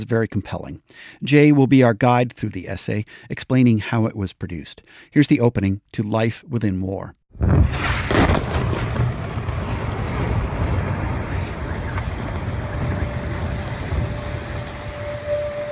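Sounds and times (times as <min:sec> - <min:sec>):
speech: 0:00.0 - 0:08.4
heavy booming bombing explosions: 0:07.3 - 0:15.2
dense continuous low rumble: 0:07.4 - 0:15.7.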